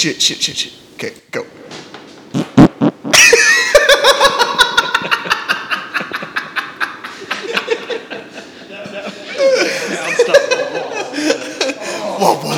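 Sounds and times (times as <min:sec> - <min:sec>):
speech: 0:00.0 - 0:01.7
short low blasts of flatulence: 0:02.3 - 0:03.2
rhythmic pulsing laughter: 0:03.1 - 0:12.0.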